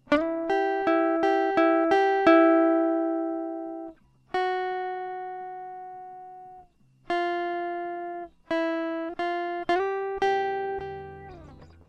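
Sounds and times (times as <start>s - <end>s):
original guitar sample: 0.0s - 11.8s.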